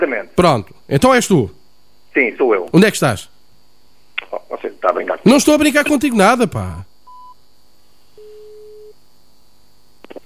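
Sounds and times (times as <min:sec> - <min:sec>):
speech: 0:00.0 - 0:01.6, 0:02.2 - 0:03.3, 0:04.3 - 0:06.9
electronic telephone tones after a call ends: 0:07.1 - 0:07.4, 0:08.2 - 0:09.0.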